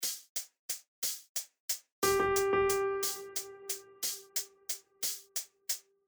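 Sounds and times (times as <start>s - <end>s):
sicilienne music piece in triple time: 2.0s - 4.4s.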